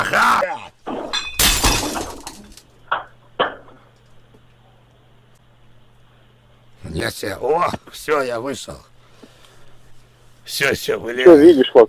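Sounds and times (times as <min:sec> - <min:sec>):
glass shattering: 0:00.9 - 0:02.6
speech: 0:07.1 - 0:08.9, 0:10.5 - 0:11.8.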